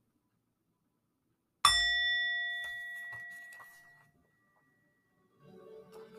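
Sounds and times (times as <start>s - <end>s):
meditation bell struck: 1.7s - 4.0s.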